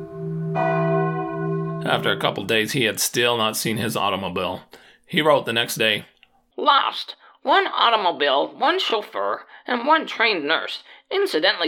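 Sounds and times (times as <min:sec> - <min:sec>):
large bell ringing: 0:00.0 - 0:03.0
speech: 0:01.8 - 0:11.6.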